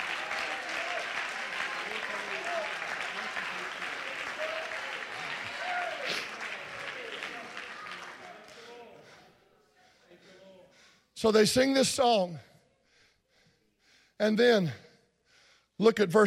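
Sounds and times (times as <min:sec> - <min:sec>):
people shouting and cheering: 0:00.0 - 0:09.0
crowd clapping: 0:00.0 - 0:09.3
speech: 0:11.2 - 0:12.5, 0:14.2 - 0:14.8, 0:15.8 - 0:16.2.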